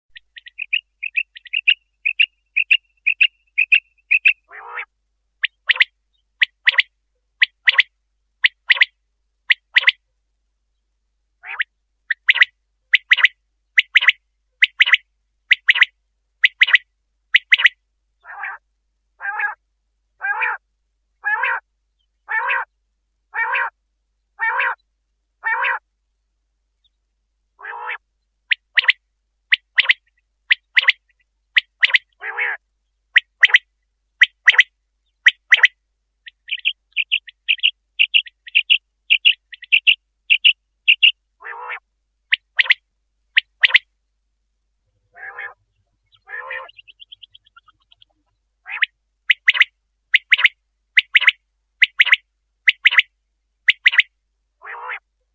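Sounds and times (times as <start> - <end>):
quail calling: 0.1 - 8.9, 9.5 - 10.0, 11.4 - 18.6, 19.2 - 19.6, 20.2 - 20.6, 21.2 - 21.6, 22.3 - 22.7, 23.4 - 23.8, 24.4 - 24.8, 25.4 - 25.8, 27.6 - 32.6, 33.2 - 33.6, 34.2 - 42.8, 43.4 - 43.8, 45.1 - 53.1, 53.7 - 55.0.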